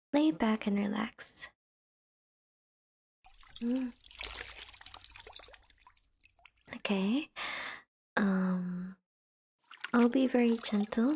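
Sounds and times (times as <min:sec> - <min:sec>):
speech: 0:00.1 - 0:01.5, 0:03.6 - 0:04.0, 0:06.9 - 0:07.5, 0:08.2 - 0:08.9, 0:09.9 - 0:11.1
water trickling and splashing while washing skin: 0:03.2 - 0:06.8, 0:09.6 - 0:11.1.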